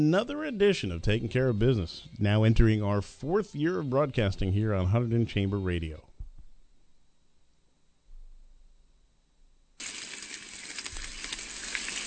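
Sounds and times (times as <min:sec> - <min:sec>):
speech: 0:00.0 - 0:06.1
bacon frying in a pan: 0:09.8 - 0:12.0.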